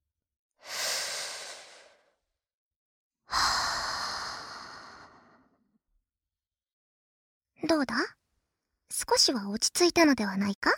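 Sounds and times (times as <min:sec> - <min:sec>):
person breathing deeply: 0:00.6 - 0:02.2, 0:03.3 - 0:05.6
speech: 0:07.6 - 0:08.2, 0:08.9 - 0:10.7.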